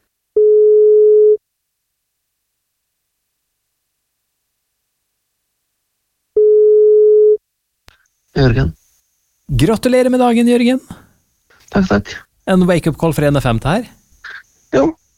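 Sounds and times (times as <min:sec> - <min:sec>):
telephone ringback tone on an outgoing call: 0:00.4 - 0:01.4, 0:06.4 - 0:07.4
speech: 0:08.4 - 0:08.8, 0:09.5 - 0:11.0, 0:11.7 - 0:15.0.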